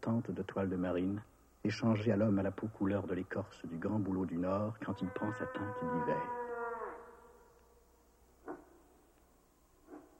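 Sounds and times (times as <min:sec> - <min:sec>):
speech: 0:00.1 - 0:06.4
female moose drawn-out nasal moan: 0:04.8 - 0:07.2
female moose soft grunts: 0:05.0 - 0:07.0.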